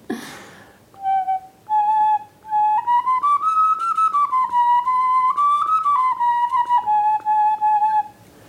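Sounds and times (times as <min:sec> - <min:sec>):
soft puff of breath: 0:00.1 - 0:00.8
bird bone flute playing a slow wavering melody: 0:00.9 - 0:08.4.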